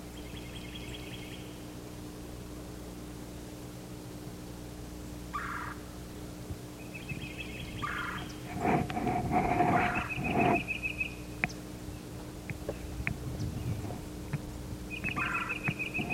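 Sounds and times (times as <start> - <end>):
yellow-throated warbler singing in a bare turkey oak at a woodland edge: 0.0 - 1.6, 6.8 - 8.5, 9.8 - 14.0, 14.9 - 16.1
bird calls of cardinals, titmice and myrtle warblers: 0.2 - 1.6, 5.3 - 5.9, 6.8 - 8.7, 9.5 - 14.0, 14.9 - 16.1.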